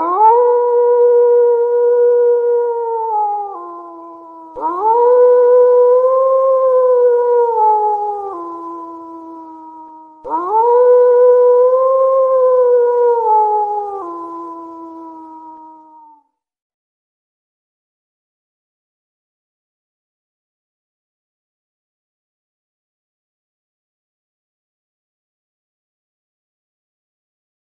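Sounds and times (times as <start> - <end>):
wolf howling: 0.0 - 16.2.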